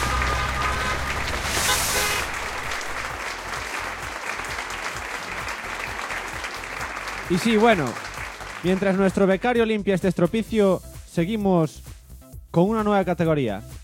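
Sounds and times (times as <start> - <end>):
audience applause at an awards ceremony for free games: 0.0 - 9.3
speech: 7.3 - 11.9, 12.5 - 13.7.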